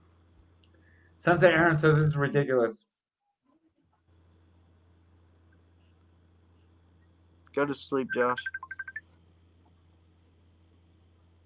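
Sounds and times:
steady low hum of room noise: 0.0s - 11.4s
speech: 1.2s - 2.9s, 7.6s - 8.6s
short electronic chirp: 8.0s - 9.0s.

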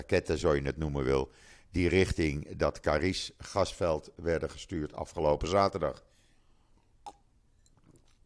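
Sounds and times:
speech: 0.0s - 6.1s
sip of water: 6.8s - 8.2s
soft swallowing and mouth noises: 6.8s - 8.2s
mouth or glass click: 7.0s - 7.8s.

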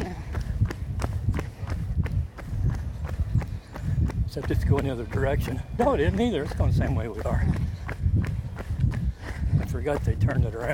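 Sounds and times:
footsteps of someone running: 0.0s - 10.7s
speech: 4.4s - 8.3s, 9.7s - 10.7s.

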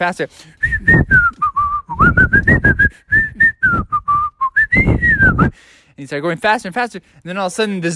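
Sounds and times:
speech: 0.0s - 1.3s, 2.3s - 3.2s, 4.8s - 7.9s
person whistling a tune: 0.6s - 5.6s.

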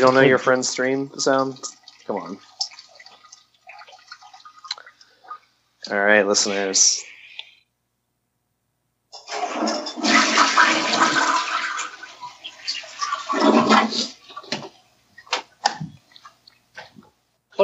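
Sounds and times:
speech: 0.0s - 2.5s, 5.8s - 7.1s
toilet flushing in a bathroom: 0.0s - 4.7s, 9.2s - 14.8s.

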